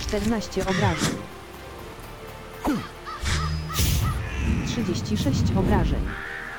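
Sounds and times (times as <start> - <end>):
speech: 0.1 - 1.3, 2.7 - 2.9, 4.7 - 6.3
raven cawing: 0.6 - 1.3, 2.7 - 4.7, 6.0 - 6.5.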